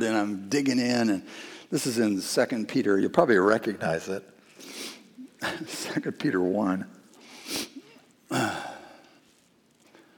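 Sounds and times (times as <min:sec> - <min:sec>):
speech: 0:00.0 - 0:07.6, 0:08.3 - 0:08.6
person sniffling: 0:07.3 - 0:09.0.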